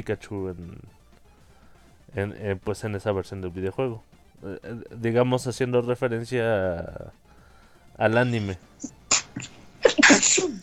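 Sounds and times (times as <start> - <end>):
speech: 0.0 - 1.0, 2.1 - 7.3, 8.0 - 9.5
person sneezing: 8.8 - 10.6.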